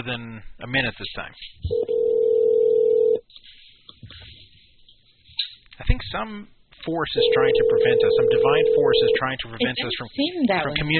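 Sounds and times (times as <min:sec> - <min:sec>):
speech: 0:00.0 - 0:01.9, 0:05.8 - 0:10.9
phone call to a regular phone ringing: 0:01.7 - 0:03.2, 0:07.2 - 0:09.3.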